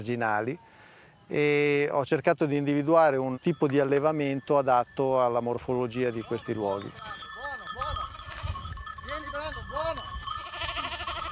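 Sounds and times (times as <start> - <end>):
speech: 0.0 - 7.2
cashmere goats bleating: 8.1 - 8.7, 10.4 - 11.2.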